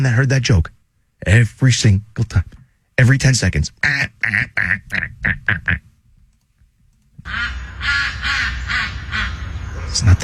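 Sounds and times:
speech: 0:00.0 - 0:05.9, 0:07.2 - 0:09.3, 0:09.9 - 0:10.2
ducks quacking: 0:03.9 - 0:05.9, 0:07.2 - 0:10.2.

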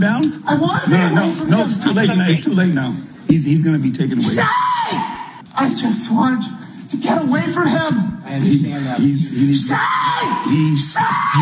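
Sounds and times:
speech: 0:00.0 - 0:05.0, 0:05.6 - 0:11.3
noise: 0:00.0 - 0:11.3
person screaming and yelling during an encounter with police: 0:09.7 - 0:11.3.

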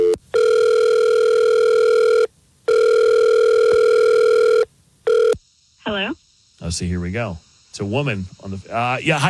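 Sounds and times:
telephone ringback tone on an outgoing call: 0:00.0 - 0:05.4
speech: 0:06.8 - 0:09.2.

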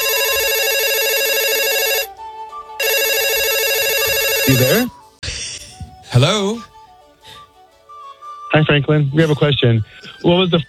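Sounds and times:
loud electronic telephone ring on an outgoing call: 0:00.0 - 0:02.1, 0:02.8 - 0:04.9
speech: 0:04.5 - 0:05.0, 0:06.2 - 0:06.7, 0:08.6 - 0:10.6.

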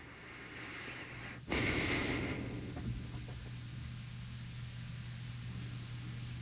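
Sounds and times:
soft breathing into a microphone: 0:00.0 - 0:02.9
faint hiss: 0:00.0 - 0:06.1.

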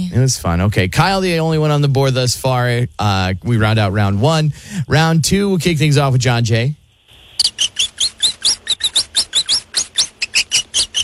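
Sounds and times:
speech: 0:00.1 - 0:06.8
hamster squeaking: 0:07.1 - 0:11.0.

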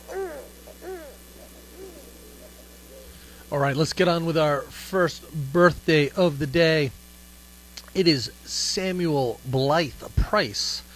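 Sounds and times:
owl hooting: 0:00.0 - 0:03.7
speech: 0:03.5 - 0:07.0, 0:08.0 - 0:10.9.

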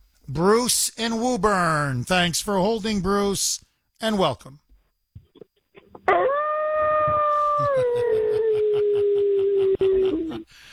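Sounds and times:
speech: 0:00.3 - 0:04.6
long loud howl: 0:06.1 - 0:10.4.

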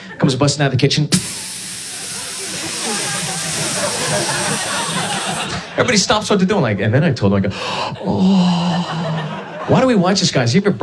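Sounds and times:
speech: 0:00.2 - 0:01.4, 0:05.8 - 0:09.1, 0:09.7 - 0:10.8
sizzling fajita platter hissing: 0:01.1 - 0:05.8
laughter: 0:02.0 - 0:06.4, 0:07.8 - 0:10.3.

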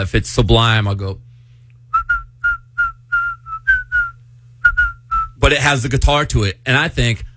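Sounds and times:
speech: 0:00.0 - 0:01.3, 0:05.5 - 0:07.3
low hum: 0:00.6 - 0:07.2
person whistling a short bouncy melody: 0:01.9 - 0:05.4.

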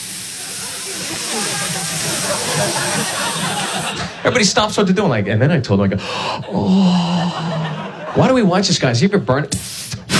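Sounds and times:
voice imitating a sizzling fajita platter: 0:00.0 - 0:04.1
laughter: 0:00.4 - 0:04.9, 0:06.2 - 0:08.8
speech: 0:04.2 - 0:07.6, 0:08.2 - 0:09.8.

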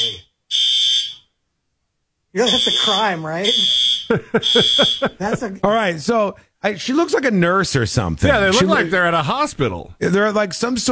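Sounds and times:
high-pitched fire alarm blaring: 0:00.5 - 0:01.3, 0:02.4 - 0:05.2
speech: 0:02.3 - 0:10.8
laughter: 0:04.0 - 0:06.0, 0:07.8 - 0:09.9.

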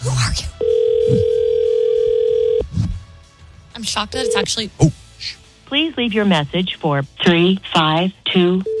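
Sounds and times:
speech: 0:00.1 - 0:01.3, 0:03.8 - 0:08.7
buzzing telephone ring tone on the line as a call is placed: 0:00.6 - 0:02.6.

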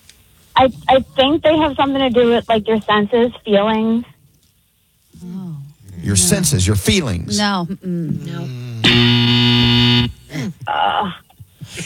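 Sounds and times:
speech: 0:00.6 - 0:04.1, 0:06.0 - 0:09.2
game show wrong-answer buzzer: 0:08.8 - 0:10.3.

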